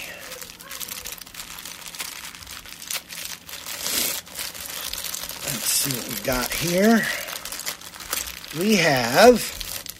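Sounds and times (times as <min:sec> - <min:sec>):
packaging of a taped cable package crinkling: 0:00.0 - 0:09.9
speech: 0:05.8 - 0:07.3, 0:08.5 - 0:09.6.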